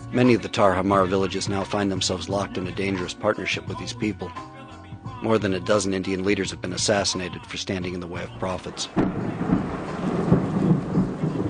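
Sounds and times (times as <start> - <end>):
speech: 0.1 - 4.6, 5.2 - 9.6
fierce heavy rain at night over a village: 8.7 - 11.4
low rumbles of thunder: 8.7 - 11.4.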